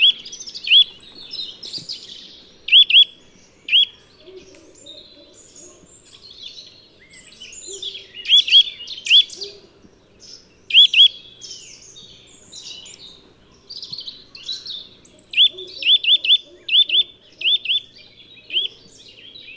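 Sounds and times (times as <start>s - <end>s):
Eurasian nuthatch Sitta europaea calls: 0.0s - 1.1s, 2.7s - 3.1s, 3.7s - 6.2s, 7.4s - 9.6s, 10.7s - 11.2s, 14.4s - 18.8s
faint bird chatter: 0.0s - 19.5s.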